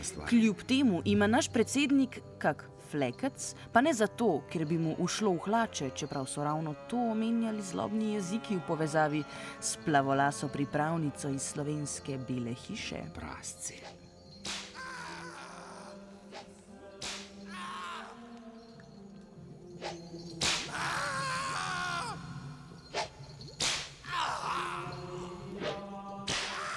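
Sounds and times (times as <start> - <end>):
speech: 0.1 - 13.9
sharp whip cracks: 14.4 - 15.6, 16.3 - 17.8, 19.8 - 24.6, 25.2 - 26.7
pained groans and strained cries from a voice: 14.6 - 16.4, 17.2 - 18.8, 20.4 - 23.0, 23.6 - 26.7.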